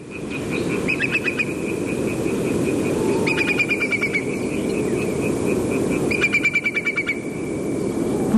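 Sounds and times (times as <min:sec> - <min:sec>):
whimbrel calling while flying over at night: 0:00.0 - 0:07.6.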